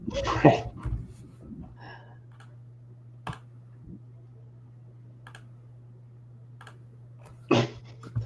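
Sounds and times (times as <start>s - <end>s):
steady low electrical hum: 0.0s - 8.2s
computer mouse clicking: 2.3s - 2.5s, 3.2s - 3.5s, 5.2s - 5.5s, 6.6s - 6.8s.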